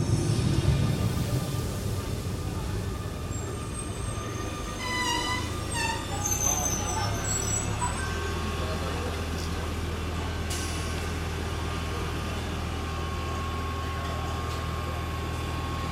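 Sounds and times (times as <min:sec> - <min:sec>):
subway train rumbling into the station: 0:00.0 - 0:15.8
high metallic squeals of a slowing subway train: 0:03.3 - 0:08.3.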